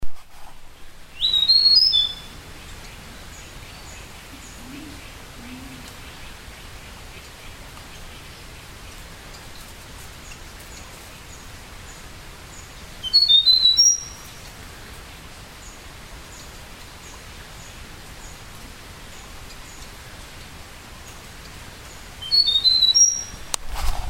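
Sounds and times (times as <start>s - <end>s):
yellow-bellied warbler Abroscopus superciliaris singing: 0.8s - 8.5s, 10.2s - 14.4s, 21.8s - 23.5s.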